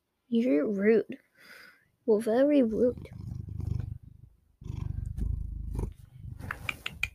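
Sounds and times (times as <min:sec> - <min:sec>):
speech: 0:00.3 - 0:01.2, 0:02.1 - 0:03.2
cat purring loudly on a person's lap: 0:02.6 - 0:06.9.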